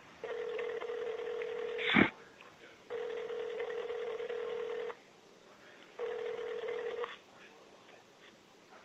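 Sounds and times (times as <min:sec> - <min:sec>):
phone ringback tones through the handset: 0:00.2 - 0:01.9, 0:02.9 - 0:04.9, 0:06.0 - 0:07.1.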